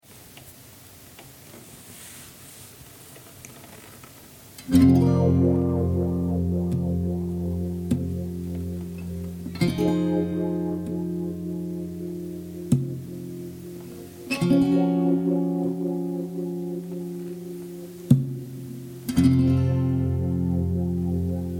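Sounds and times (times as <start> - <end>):
F 100 guitar chords: 4.6 - 21.5.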